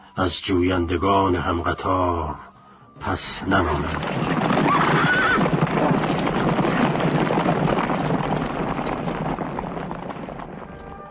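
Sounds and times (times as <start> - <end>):
speech: 0.2 - 4.7
tired horse hooves clopping through alleys: 3.6 - 11.0
horse whinnying: 4.0 - 6.4.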